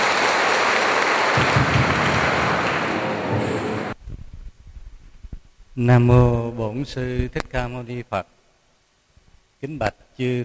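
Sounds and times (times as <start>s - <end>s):
crowd at a Buddhist retreat applauding to welcome a dharma talk: 0.0s - 4.0s
speech: 5.8s - 8.4s, 9.6s - 10.4s.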